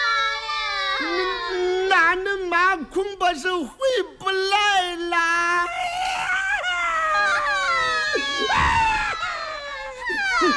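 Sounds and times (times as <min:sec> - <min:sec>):
child crying loudly in high wails and sobs: 0:00.0 - 0:01.8, 0:05.7 - 0:10.5
speech: 0:01.5 - 0:05.7.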